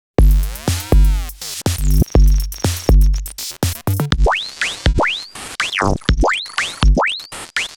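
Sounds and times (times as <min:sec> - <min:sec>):
drum beat: 0:00.2 - 0:05.0, 0:06.1 - 0:07.0.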